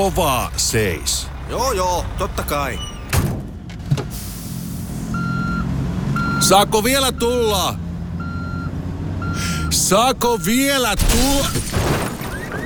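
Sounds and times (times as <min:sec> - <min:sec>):
speech: 0:00.0 - 0:02.9, 0:06.4 - 0:07.8, 0:09.4 - 0:12.0
car engine rumble: 0:00.0 - 0:12.6
car reversing beeps: 0:05.1 - 0:05.6, 0:06.2 - 0:07.6, 0:08.2 - 0:10.7.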